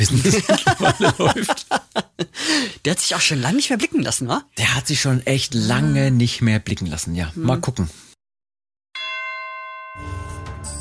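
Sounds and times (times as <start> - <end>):
laughter: 0.0 - 2.8
speech: 0.0 - 8.1
doorbell chiming: 9.0 - 10.7.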